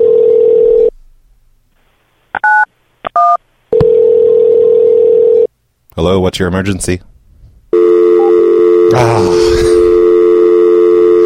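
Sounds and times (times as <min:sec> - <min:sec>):
telephone tone on an emergency line after the caller hangs up: 0:00.0 - 0:00.9, 0:03.8 - 0:05.5, 0:07.7 - 0:11.2
speech: 0:06.0 - 0:07.1, 0:08.9 - 0:09.7.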